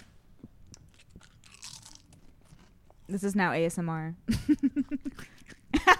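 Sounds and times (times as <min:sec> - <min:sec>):
potato chip being bitten and chewed: 0:00.7 - 0:03.2
speech: 0:03.1 - 0:05.4.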